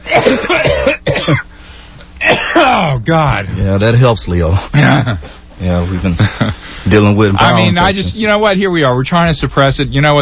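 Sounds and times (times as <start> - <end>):
person coughing deliberately: 0.0 - 1.5, 2.2 - 3.0
speech: 2.6 - 10.2.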